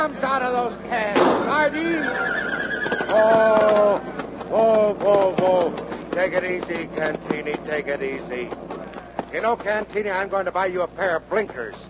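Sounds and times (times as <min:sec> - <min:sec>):
horse hooves: 0:00.0 - 0:11.8
speech: 0:00.0 - 0:11.8
horse neighing among mounted soldiers: 0:01.7 - 0:04.0.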